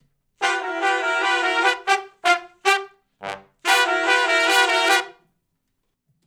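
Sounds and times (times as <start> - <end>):
R&B vocal riff in G from harmony to unison: 0.4 - 5.1.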